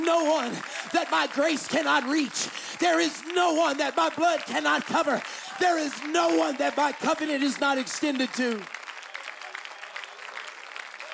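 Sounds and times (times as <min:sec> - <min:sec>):
congregation clapping hands in a reverberant room: 0:00.0 - 0:11.1
speech: 0:00.1 - 0:08.8.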